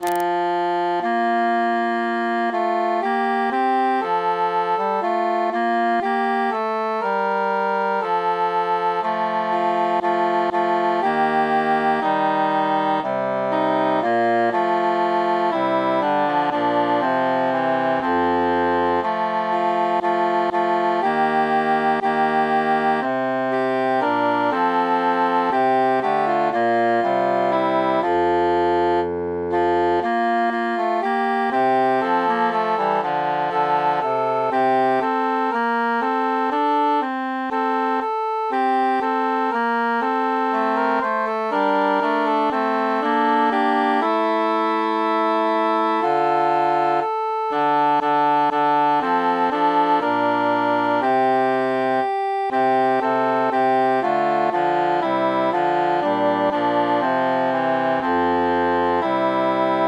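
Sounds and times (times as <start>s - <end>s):
muted alto flute: 0.9s - 59.8s.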